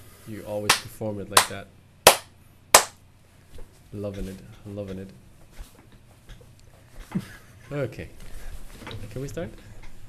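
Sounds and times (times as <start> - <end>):
speech: 0.3 - 1.8, 3.9 - 5.2, 7.1 - 8.2, 8.8 - 9.7
drummer-style hand claps: 0.6 - 3.0
laughter: 7.0 - 7.7.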